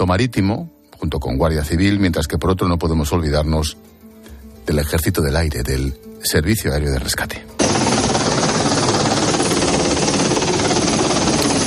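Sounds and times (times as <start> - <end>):
speech: 0.0 - 4.0, 4.7 - 7.8
Super Puma search-and-rescue helicopter taking off from Gando air base: 7.6 - 11.6.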